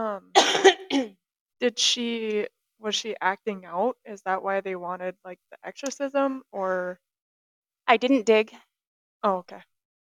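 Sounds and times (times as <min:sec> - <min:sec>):
speech: 0:00.0 - 0:07.0, 0:07.9 - 0:09.7
harsh raspy coughs: 0:00.3 - 0:01.2.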